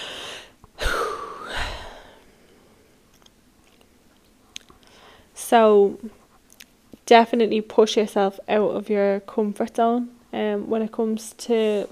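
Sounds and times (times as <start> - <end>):
deep breath drawn in and let out: 0.0 - 2.8, 4.8 - 5.3
speech: 5.5 - 6.2, 7.1 - 11.9.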